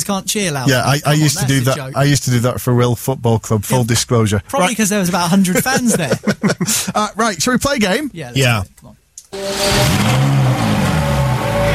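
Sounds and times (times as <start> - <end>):
speech: 0.1 - 10.4
laughter: 0.7 - 2.2, 4.9 - 7.4
Ferrari supercar starter: 9.3 - 11.7.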